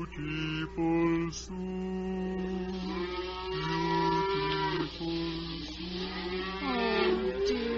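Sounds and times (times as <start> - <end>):
speech: 0.2 - 1.9
several cows mooing while being driven home: 2.3 - 7.7.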